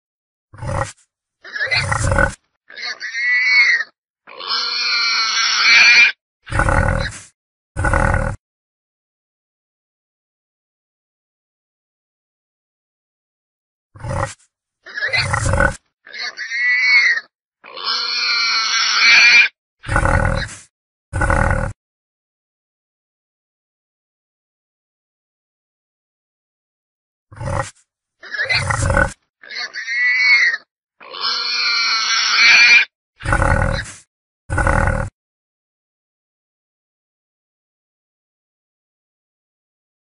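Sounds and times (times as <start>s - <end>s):
wild boar: 0.6s - 8.4s, 14.0s - 21.8s, 27.3s - 35.2s.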